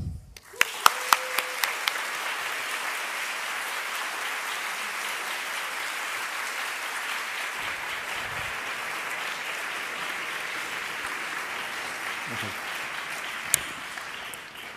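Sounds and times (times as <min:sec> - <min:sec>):
crowd applause welcoming a priest: 0:00.4 - 0:14.7.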